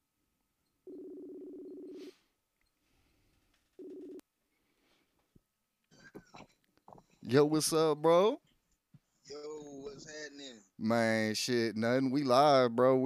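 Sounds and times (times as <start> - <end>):
telephone ringback tone on a phone line: 0.8 - 2.1, 3.8 - 4.2
speech: 7.3 - 8.5, 10.8 - 13.0.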